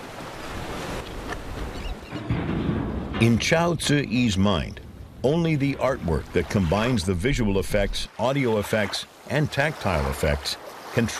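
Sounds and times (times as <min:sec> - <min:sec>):
Yellow River water rushing and surging in Ningxia: 0:00.0 - 0:01.9, 0:05.0 - 0:11.1
speech: 0:03.2 - 0:11.1.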